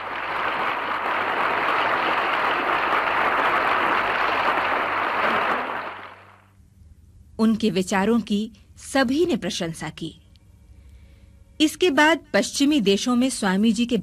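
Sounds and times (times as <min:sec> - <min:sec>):
large crowd applauding thunderously after a speech in a hall: 0:00.0 - 0:06.4
speech: 0:07.4 - 0:10.2, 0:11.6 - 0:14.0.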